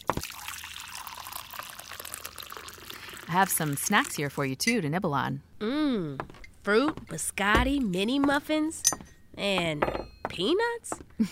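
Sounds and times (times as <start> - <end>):
hot water pouring into a cup: 0.0 - 4.5
speech: 3.3 - 11.3.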